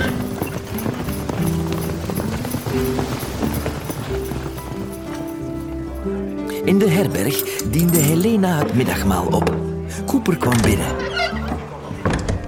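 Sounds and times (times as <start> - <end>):
faint jingling: 0.0 - 9.0
horse hooves clip-clopping pulling a sleigh: 0.0 - 9.7
speech: 6.8 - 11.4.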